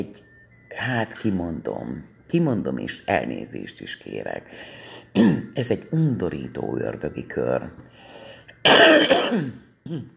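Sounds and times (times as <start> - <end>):
speech: 0.8 - 7.9, 8.6 - 10.1
coughing and throat clearing: 5.1 - 5.6, 8.6 - 10.1.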